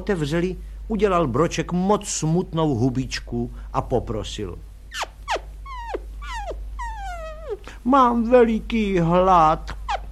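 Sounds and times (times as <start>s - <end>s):
speech: 0.0s - 5.1s, 7.8s - 9.8s
steady low hum: 0.0s - 10.1s
dog whining yelps sliding downward in pitch: 4.9s - 7.6s.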